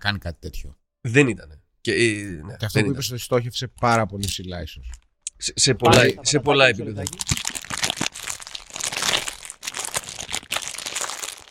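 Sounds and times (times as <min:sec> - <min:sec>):
speech: 0:00.0 - 0:07.6
crisp packet crinkling and rustling: 0:07.0 - 0:11.4.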